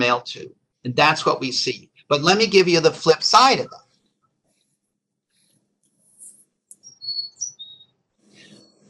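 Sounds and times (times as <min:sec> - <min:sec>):
speech: 0:00.0 - 0:03.8
burst of rustling noise: 0:03.8 - 0:06.6, 0:08.1 - 0:08.8
chickadee singing pure-tone high whistled notes: 0:06.8 - 0:08.7.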